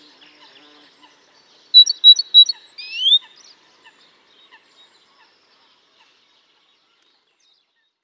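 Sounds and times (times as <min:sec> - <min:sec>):
great tit Parus major giving bright high notes and a rising slurred whistle: 0:01.8 - 0:03.2.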